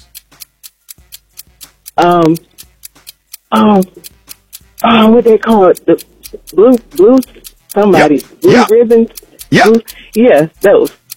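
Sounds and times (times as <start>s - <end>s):
game show countdown clock ticking: 0.0s - 11.1s
speech: 2.0s - 2.5s, 3.5s - 4.2s, 4.8s - 11.0s.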